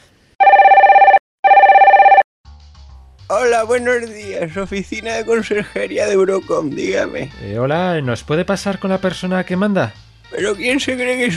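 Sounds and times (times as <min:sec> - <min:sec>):
warbling pulsing telephone ring tone while calling a studio: 0:00.4 - 0:02.2
speech: 0:03.4 - 0:11.3.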